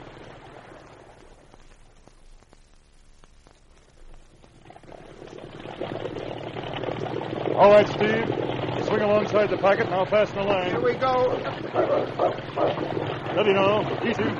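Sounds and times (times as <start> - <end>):
motorboat engine roaring at full throttle on a river with rapids: 6.1 - 14.3
speech: 7.6 - 14.3.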